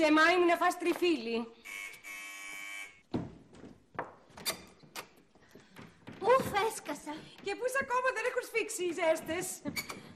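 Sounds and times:
speech: 0.0s - 1.8s, 6.2s - 10.0s
electric door buzzer: 1.6s - 3.2s.

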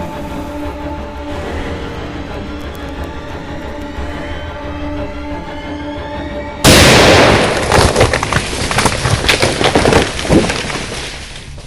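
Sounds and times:
sudden loud explosion: 6.6s - 8.8s
rumbling crackling and splintering debris: 6.7s - 11.6s.

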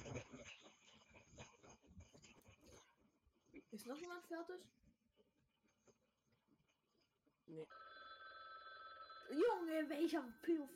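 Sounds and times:
speech: 3.8s - 4.8s, 7.5s - 7.8s, 9.3s - 10.7s
steady electronic ringing tone: 7.7s - 10.7s.

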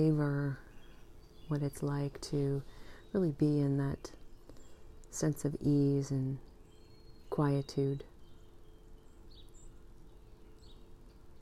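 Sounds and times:
speech: 0.0s - 0.7s, 1.5s - 4.2s, 5.1s - 6.5s, 7.3s - 8.1s
birds chirping softly: 0.0s - 11.4s.

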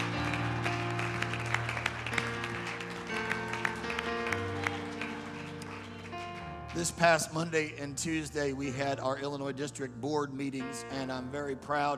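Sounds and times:
audience clapping: 0.0s - 7.6s
sustained organ-like chords droning: 0.0s - 11.9s
speech: 6.8s - 11.9s.

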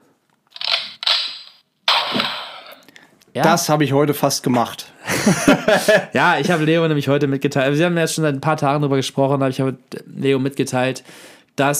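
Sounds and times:
toy gun sound effect set off by pressing its button: 0.6s - 2.8s
speech: 3.4s - 11.7s
laughter: 5.0s - 6.6s.

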